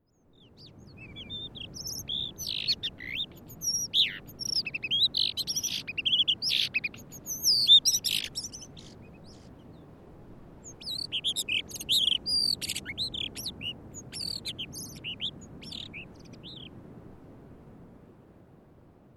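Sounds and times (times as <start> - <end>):
female isohiyodori calling: 0.7 - 9.6, 10.6 - 16.7.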